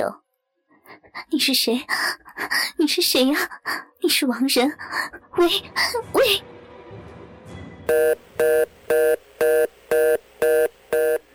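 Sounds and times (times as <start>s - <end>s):
speech: 0.0s - 0.2s, 0.9s - 6.6s, 7.9s - 10.1s
telephone hang-up tone after call ends: 7.9s - 11.2s.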